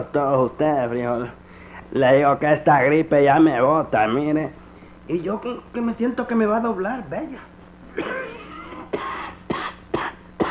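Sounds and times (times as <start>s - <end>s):
speech: 0.0s - 8.2s
harsh barking cough: 7.9s - 10.4s.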